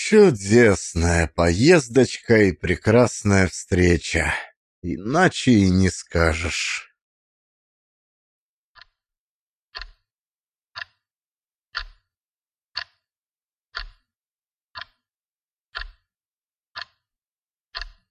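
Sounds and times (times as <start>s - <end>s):
clock ticking in a hall: 0.0s - 6.8s, 9.7s - 10.0s, 10.8s - 11.0s, 11.8s - 12.1s, 12.8s - 13.0s, 13.8s - 14.1s, 14.8s - 15.0s, 15.7s - 16.0s, 16.8s - 17.0s, 17.7s - 18.0s
speech: 0.1s - 6.9s.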